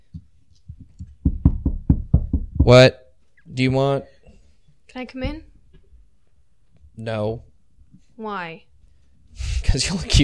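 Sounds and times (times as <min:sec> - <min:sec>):
knocking on a door: 0:00.1 - 0:02.8
speech: 0:02.7 - 0:03.0, 0:03.6 - 0:04.1, 0:05.0 - 0:05.5, 0:07.0 - 0:07.5, 0:08.2 - 0:08.7, 0:09.4 - 0:10.2.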